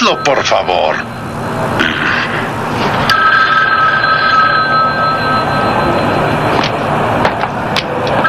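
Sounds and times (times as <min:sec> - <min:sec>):
telephone ringing with a steady electronic tone: 0:00.0 - 0:01.8, 0:02.8 - 0:06.9
constant rumbling noise: 0:00.0 - 0:08.2
speech: 0:00.1 - 0:02.2.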